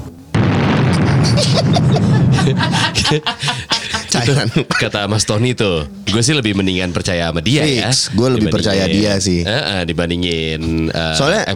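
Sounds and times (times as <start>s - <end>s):
sustained roaring rumble after a bomb explosion: 0.3s - 3.4s
loud bomb explosion: 0.3s - 4.2s
crackling debris from a bomb explosion: 0.4s - 3.4s
laughter: 0.8s - 5.5s
speech: 1.3s - 11.5s.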